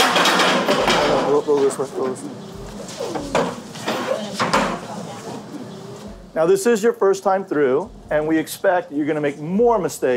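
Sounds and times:
indistinct voices murmuring at a cross-examination training session: 0.7 - 6.7
speech: 1.5 - 3.4, 6.3 - 10.1
chairs scraping and knocking across a hard floor: 2.6 - 5.4.

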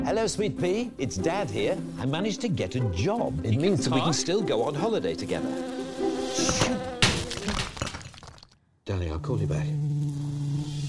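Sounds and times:
speech: 0.1 - 5.8, 9.2 - 9.8
bee buzzing: 3.9 - 7.4, 9.7 - 10.8.

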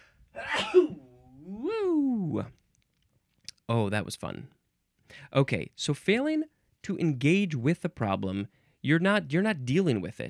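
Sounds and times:
sneeze: 0.4 - 1.2
speech: 2.4 - 2.6, 3.7 - 10.2.

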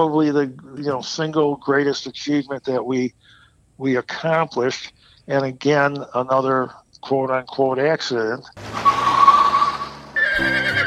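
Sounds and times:
speech: 0.0 - 8.7, 10.4 - 10.8
horse neighing: 9.0 - 10.8.

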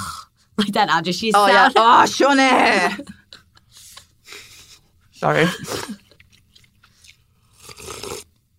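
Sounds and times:
speech: 0.6 - 3.2, 5.2 - 6.0
chewing and crunching Korean food: 6.1 - 8.4.

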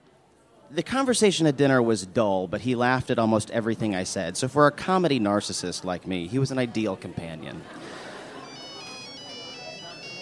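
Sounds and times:
steady noise during a meal: 0.0 - 10.1
speech: 0.7 - 8.0
laughter: 5.4 - 10.1
Nokia flip phone ringtone: 8.3 - 10.1.

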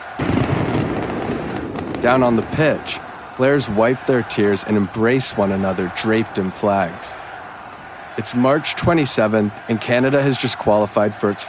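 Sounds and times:
roaring crowd of singing fans in a sold-out stadium: 0.0 - 11.4
fireworks and flares crackling and popping over a stadium: 0.2 - 3.1
speech: 2.0 - 7.2, 8.2 - 11.4.

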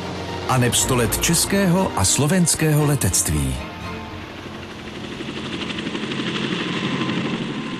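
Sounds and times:
droning helicopter engine: 0.0 - 7.7
speech: 0.5 - 3.8
helicopter rotor thumping: 4.2 - 7.7.

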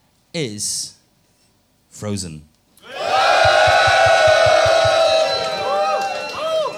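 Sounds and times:
speech: 0.4 - 1.0, 2.0 - 2.5
crowd roaring and cheering: 2.8 - 6.7
low rhythmic thumping: 3.2 - 5.6.

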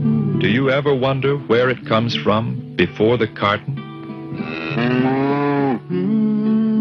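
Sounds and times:
speech: 0.4 - 5.2
cow mooing: 4.3 - 6.3.

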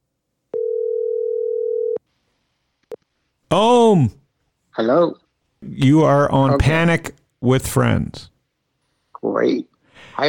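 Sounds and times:
telephone dial tone: 0.5 - 2.0
speech: 3.5 - 4.2, 4.8 - 8.3, 9.3 - 10.2.

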